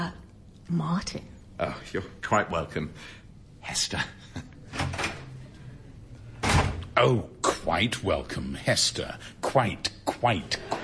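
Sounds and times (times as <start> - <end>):
speech: 0.1 - 4.9, 7.0 - 10.8
door opening and closing: 4.7 - 5.4, 6.4 - 7.0.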